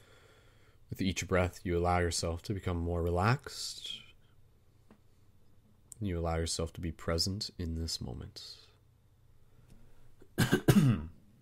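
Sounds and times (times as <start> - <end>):
speech: 1.0 - 4.0, 6.0 - 8.7, 10.4 - 11.1
raspy coughs during a guided breathing meditation: 10.4 - 11.2.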